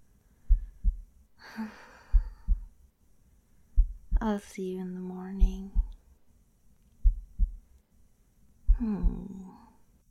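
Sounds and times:
human heartbeat thumping: 0.4s - 1.2s, 2.1s - 2.8s, 3.7s - 4.4s, 5.3s - 6.0s, 7.0s - 7.7s, 8.7s - 9.4s
speech: 1.6s - 1.8s, 4.2s - 5.8s.

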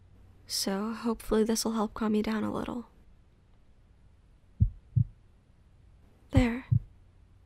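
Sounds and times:
faint low hum: 0.0s - 7.4s
speech: 0.5s - 2.9s
heartbeat heard through a chest: 4.6s - 5.2s, 6.4s - 6.9s.

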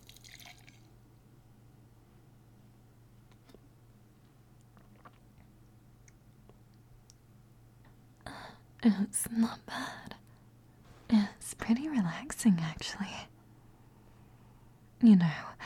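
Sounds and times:
drink pouring into a cup: 0.0s - 0.9s
low steady hum: 0.0s - 15.6s
speech: 8.8s - 10.0s, 11.7s - 13.3s, 15.0s - 15.6s.

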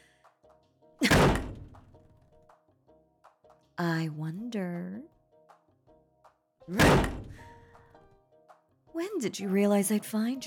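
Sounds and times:
bathroom stall doors banging open in a men's room: 1.0s - 1.8s, 6.7s - 7.5s
speech: 3.8s - 5.1s, 6.7s - 7.2s, 9.0s - 10.4s.

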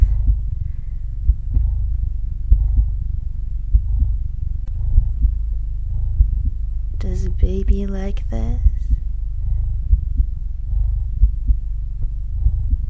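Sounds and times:
deep rumbling hum: 0.0s - 12.8s
human heartbeat thumping in low double beats: 0.0s - 12.8s
speech: 7.6s - 8.8s.

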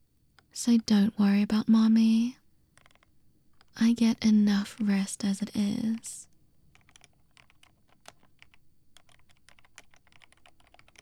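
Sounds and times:
speech: 0.6s - 2.4s, 3.8s - 6.3s
computer keyboard typing: 2.7s - 10.9s.

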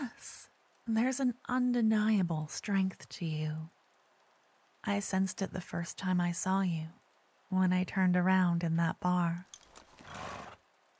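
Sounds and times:
speech: 0.9s - 3.8s, 4.8s - 10.2s
horse neighing: 10.0s - 10.6s.

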